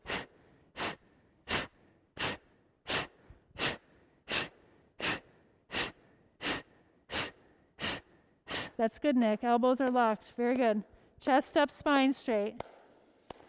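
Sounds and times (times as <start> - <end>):
sharp forceful exhales during a breathing exercise: 0.0 - 8.8
speech: 8.8 - 12.7.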